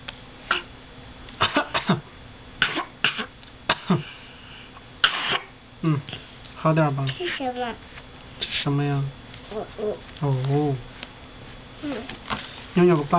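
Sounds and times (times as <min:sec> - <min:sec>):
throat clearing: 0:00.5 - 0:00.7, 0:01.4 - 0:04.2, 0:05.0 - 0:06.2
people coughing: 0:01.4 - 0:04.2, 0:05.0 - 0:06.0
speech: 0:06.6 - 0:08.0, 0:08.6 - 0:10.9, 0:11.8 - 0:13.1.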